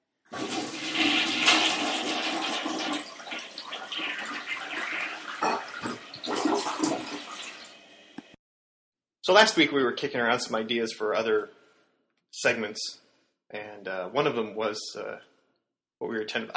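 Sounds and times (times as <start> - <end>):
toilet flushing: 0.3 - 8.3
speech: 9.3 - 11.6, 12.4 - 15.3, 16.0 - 16.5.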